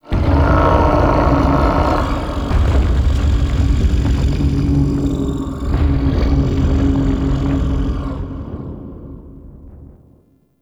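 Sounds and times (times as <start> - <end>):
shaking lab rumble ambience: 0.0 - 10.4.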